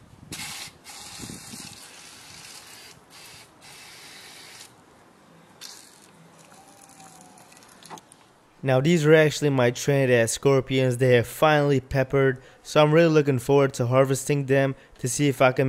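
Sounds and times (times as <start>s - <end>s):
pressure sprayer spraying liquid: 0.3s - 4.7s
speech: 8.6s - 15.6s.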